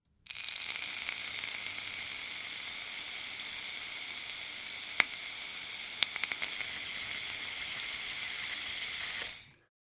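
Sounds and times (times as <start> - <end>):
vape device: 0.2 - 9.6.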